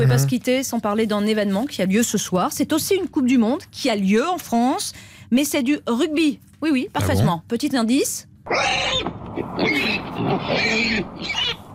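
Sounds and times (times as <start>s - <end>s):
pigs grunting roughly: 0.0s - 0.4s, 8.5s - 11.7s
speech: 0.0s - 11.5s
pigs squealing: 8.5s - 11.7s.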